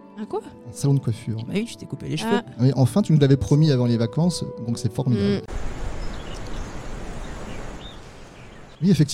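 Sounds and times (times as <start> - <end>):
speech: 0.2 - 5.8, 8.8 - 9.1
river rushing in a forest: 5.5 - 8.7
rustling leaves in a forest: 5.5 - 8.8.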